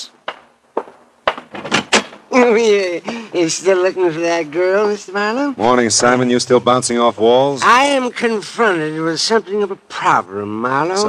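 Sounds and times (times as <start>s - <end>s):
newspaper thumping against a door at dawn: 0.3s - 2.3s
speech: 2.4s - 11.0s.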